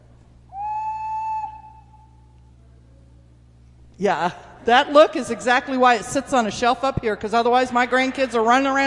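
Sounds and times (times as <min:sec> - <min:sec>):
small bird-shaped toy whistle blown: 0:00.5 - 0:02.2
speech: 0:04.0 - 0:08.8.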